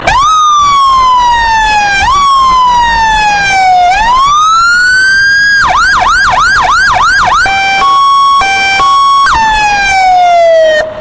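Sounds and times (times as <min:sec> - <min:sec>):
fire engine siren: 0:00.0 - 0:11.0.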